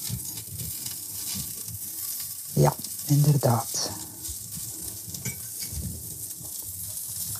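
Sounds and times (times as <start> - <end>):
almond crisps sizzling in a pan: 0.0 - 7.3
faint stirring or scraping of food in a pan: 0.0 - 7.3
speech: 2.6 - 4.0.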